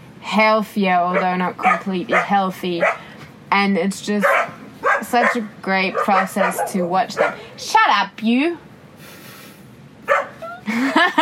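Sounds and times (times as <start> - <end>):
speech: 0.3 - 4.5, 5.1 - 8.7, 10.8 - 11.1
small dog barking and yelping: 1.1 - 3.1, 4.2 - 7.5, 10.1 - 10.4
laughter: 10.4 - 11.1.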